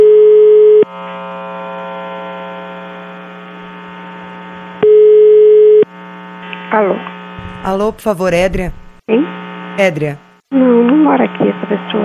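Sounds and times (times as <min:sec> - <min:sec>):
telephone ringing: 0:00.0 - 0:00.8, 0:04.8 - 0:05.8
speech: 0:07.6 - 0:12.0.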